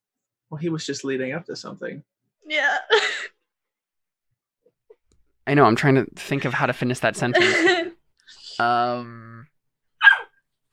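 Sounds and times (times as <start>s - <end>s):
speech: 0.5s - 3.2s, 5.5s - 7.9s, 8.6s - 9.2s
puppy yip: 10.0s - 10.4s.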